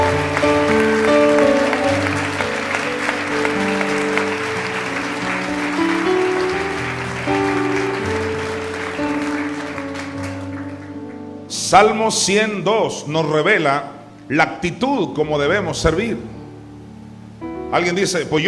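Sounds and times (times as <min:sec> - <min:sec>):
church congregation applauding: 0:00.0 - 0:12.0
speech: 0:11.7 - 0:16.4, 0:17.7 - 0:18.4.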